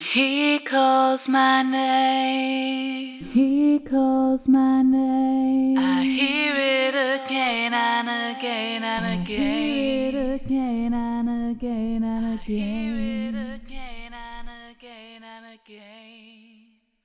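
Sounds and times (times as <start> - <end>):
voice with extreme notched EQ: 1.3 - 15.4.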